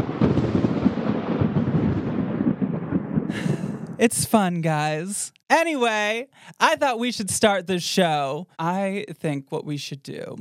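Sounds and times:
thunder sound effect rumbling: 0.0 - 5.2
speech: 4.0 - 10.3.

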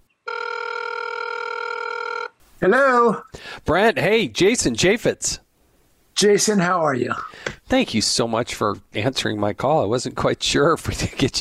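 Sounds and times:
phone line ring tone on an outgoing call: 0.2 - 2.4
speech: 2.6 - 5.4, 6.2 - 11.3.

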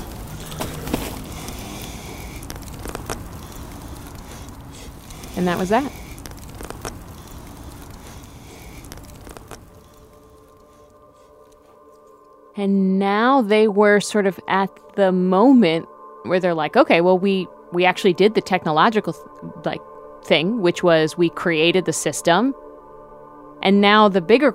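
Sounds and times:
dense rushing hiss of bonfire: 0.0 - 11.0
giant bonfire burning sawed-up computer pieces crackling and popping: 0.0 - 11.8
speech: 5.4 - 6.0, 12.6 - 22.6, 23.6 - 24.5.

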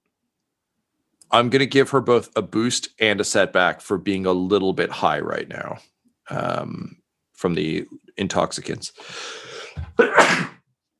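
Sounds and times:
speech: 1.3 - 10.5
person sneezing: 9.6 - 10.6.

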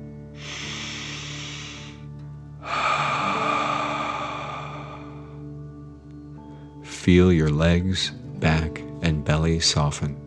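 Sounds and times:
forceful exhale in a guided deep-breathing exercise: 0.4 - 5.4
deep breath drawn in through the nose: 0.4 - 5.5
speech: 7.0 - 10.2.

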